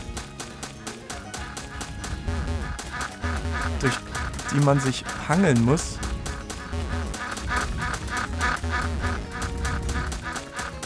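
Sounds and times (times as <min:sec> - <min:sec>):
continuous video game sounds: 0:00.0 - 0:10.8
cartoonish video-game duck quacking: 0:02.5 - 0:05.2, 0:06.6 - 0:10.8
speech: 0:03.7 - 0:06.0.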